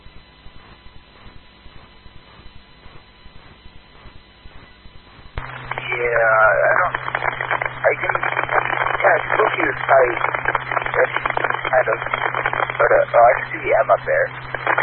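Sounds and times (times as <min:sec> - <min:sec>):
low hum: 0:00.0 - 0:14.8
steady static hiss: 0:05.4 - 0:14.8
voice talking through a crackly band-limited two-way radio: 0:05.5 - 0:14.8.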